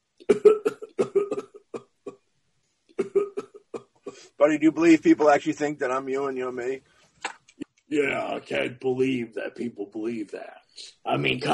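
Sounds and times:
person coughing in harsh hacking bursts: 0.2 - 2.2, 3.0 - 4.4
speech: 4.4 - 6.9, 7.9 - 11.5.

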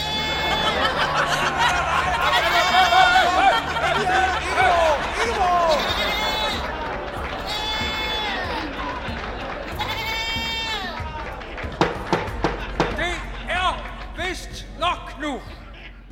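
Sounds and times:
goat bleating: 0.0 - 1.1, 1.8 - 6.7, 7.4 - 8.6, 9.7 - 11.0
laughter: 0.0 - 16.1
overlapping voices and commotion: 0.0 - 16.1
sharp knocks: 11.8 - 13.3.

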